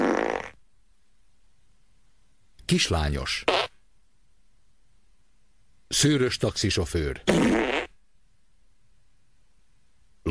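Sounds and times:
short ordinary fart: 0:00.0 - 0:00.6, 0:03.5 - 0:03.7, 0:07.3 - 0:08.0
speech: 0:02.7 - 0:03.7, 0:05.9 - 0:07.6.

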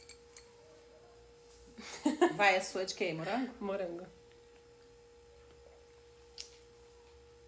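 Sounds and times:
small glass yogurt-drink bottle clinking: 0:00.0 - 0:00.5
faint steady hum: 0:00.0 - 0:07.4
speech: 0:02.2 - 0:04.2.

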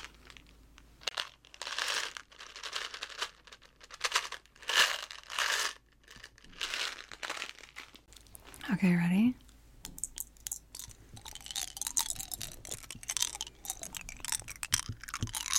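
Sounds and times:
small wrapped candies crinkling: 0:00.0 - 0:08.6, 0:09.9 - 0:15.5
speech: 0:08.7 - 0:09.4.

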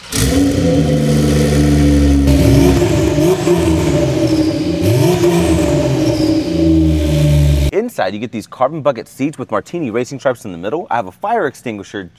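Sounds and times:
sports car exhaust revving: 0:00.0 - 0:07.7
speech: 0:08.0 - 0:12.1.

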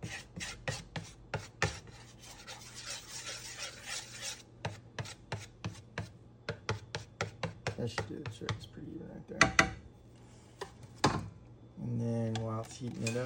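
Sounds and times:
spatula spreading oil around a pan: 0:00.0 - 0:07.6, 0:12.7 - 0:13.2
speech: 0:07.8 - 0:09.8, 0:11.9 - 0:13.2.

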